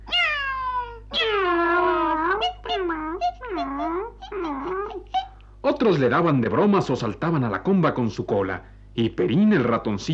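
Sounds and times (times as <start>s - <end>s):
cat meowing: 0.0s - 5.3s
speech: 5.8s - 10.1s.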